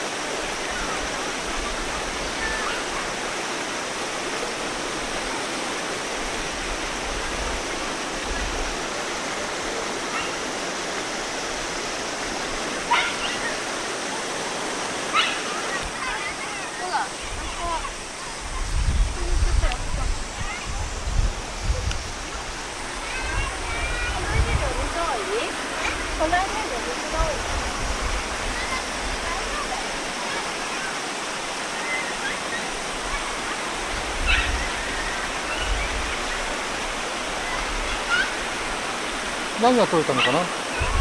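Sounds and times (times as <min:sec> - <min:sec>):
flowing river water rushing: 0:00.0 - 0:40.9
speech: 0:39.6 - 0:40.6.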